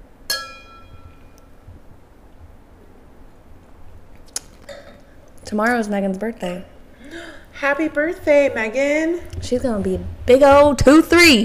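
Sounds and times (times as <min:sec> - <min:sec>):
glasses clinking in a toast: 0:00.3 - 0:01.4
speech: 0:05.5 - 0:06.7, 0:07.6 - 0:11.4.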